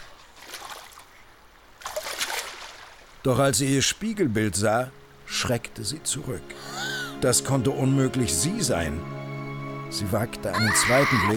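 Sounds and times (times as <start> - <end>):
water trickling from a small spring over stones in a forest: 0.0 - 3.3
speech: 3.2 - 9.2, 9.9 - 11.3.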